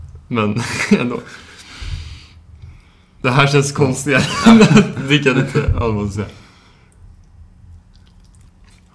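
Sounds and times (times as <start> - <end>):
faint low hum: 0.0 - 8.9
speech: 0.3 - 1.5, 3.2 - 6.4
laughter: 4.2 - 5.8
chewing and lip smacking while eating: 6.9 - 8.9.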